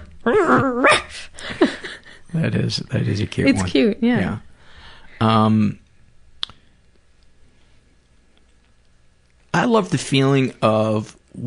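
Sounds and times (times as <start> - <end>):
person imitating a sleeping female dog growling and barking: 0.2 - 1.2
speech: 0.2 - 1.3, 2.4 - 4.5, 5.2 - 5.8, 9.5 - 11.4.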